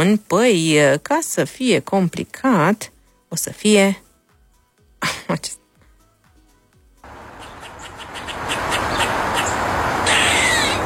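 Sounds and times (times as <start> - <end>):
speech: 0.0 - 4.0, 5.0 - 5.6
agitated squirrel chattering in sharp raspy calls: 7.2 - 10.8.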